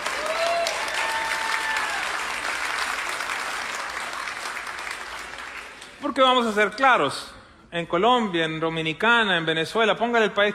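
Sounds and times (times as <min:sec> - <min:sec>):
crowd applauding: 0:00.0 - 0:06.0
speech: 0:06.0 - 0:10.5.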